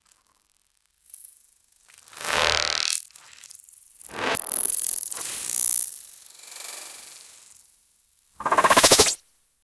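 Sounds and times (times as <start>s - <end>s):
slime stretching swoop: 8.4s - 9.2s.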